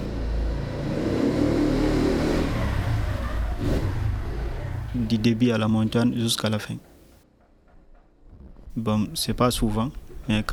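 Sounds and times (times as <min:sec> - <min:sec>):
motorcycle engine revving while climbing a mountain: 0:00.0 - 0:05.3
speech: 0:05.1 - 0:06.9, 0:08.8 - 0:10.5.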